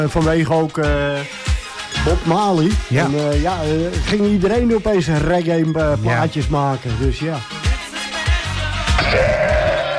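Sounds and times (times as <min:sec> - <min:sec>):
speech: 0:00.0 - 0:07.6, 0:09.1 - 0:09.4
sheep bleating: 0:09.0 - 0:09.9.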